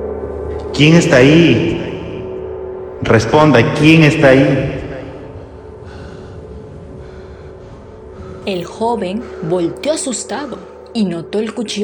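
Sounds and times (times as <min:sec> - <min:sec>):
low hum: 0:00.0 - 0:11.8
speech: 0:00.8 - 0:01.9, 0:03.0 - 0:04.8, 0:08.5 - 0:11.8
heavy breathing: 0:05.2 - 0:11.0.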